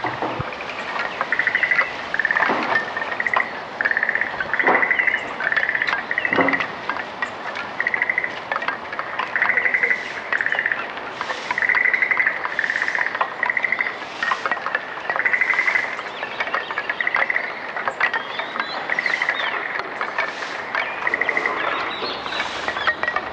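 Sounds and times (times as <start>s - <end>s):
frogs croaking: 0.0s - 23.3s
wooden votive plaques clacking in the wind: 0.0s - 23.3s
broom sweeping: 9.5s - 10.4s, 11.1s - 13.1s, 14.0s - 14.8s, 18.9s - 23.3s.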